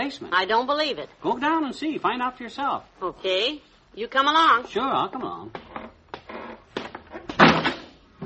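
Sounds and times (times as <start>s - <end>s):
speech: 0.1s - 6.0s
door swinging and banging shut: 6.8s - 8.2s.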